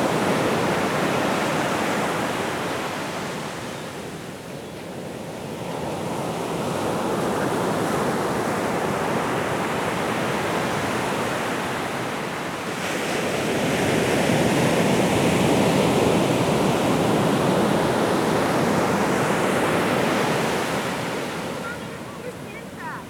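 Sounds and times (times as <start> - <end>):
surf rolling onto a beach: 0.0 - 23.0.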